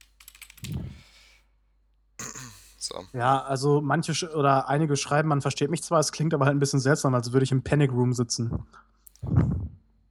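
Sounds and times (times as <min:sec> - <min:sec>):
computer keyboard keys clattering as a number is typed: 0:00.0 - 0:01.0
speech: 0:02.8 - 0:09.7.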